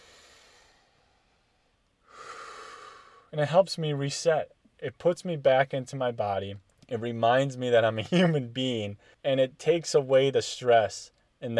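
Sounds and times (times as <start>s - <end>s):
slow deep breathing: 0.0s - 3.4s
speech: 3.3s - 11.5s.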